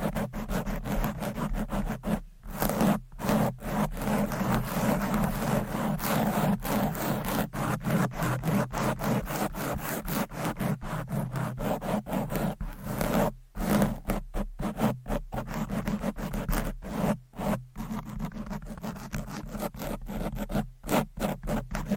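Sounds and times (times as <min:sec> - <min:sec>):
long nails scratching fast and hard against the microphone: 0:00.0 - 0:21.9.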